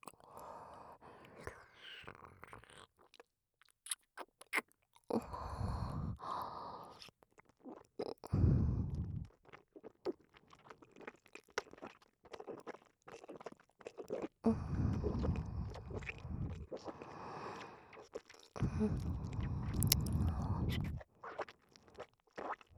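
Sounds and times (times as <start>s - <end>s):
thick swallowing and gulps close to the ear: 1.3s - 22.7s
soft wet mouth clicks: 18.6s - 21.0s.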